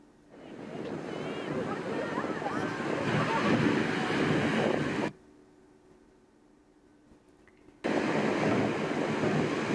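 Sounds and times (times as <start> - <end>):
ocean waves breaking on the beach at Santa Cruz, California: 0.3 - 5.1, 7.8 - 9.7.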